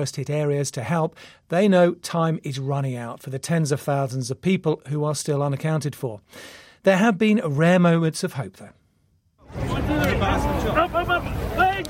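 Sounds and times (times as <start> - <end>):
speech: 0.0 - 8.8, 9.9 - 11.8
commotion: 9.4 - 11.8
rescuers shouting while pulling survivors from rubble: 9.5 - 11.8.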